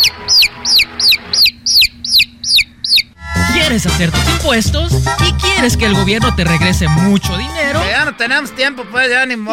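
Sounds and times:
chick peeping: 0.0s - 3.2s
speech: 3.8s - 9.5s.

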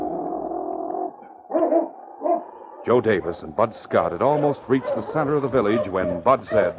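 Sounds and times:
dog growling: 0.0s - 3.5s, 4.1s - 6.7s
dog barking gruffly: 1.5s - 2.5s, 4.7s - 6.7s
speech: 2.9s - 6.7s.

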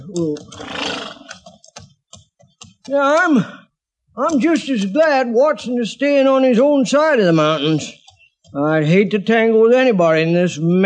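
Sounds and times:
speech: 0.1s - 0.8s, 2.9s - 3.6s, 4.2s - 10.8s
horse whinnying: 0.4s - 1.4s.

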